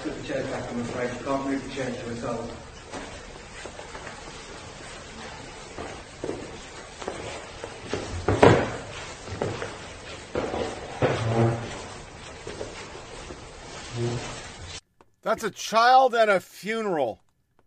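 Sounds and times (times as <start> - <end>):
speech: 0.3 - 2.7, 15.3 - 17.2
chair scraped across a hard floor at a funeral: 2.6 - 14.8.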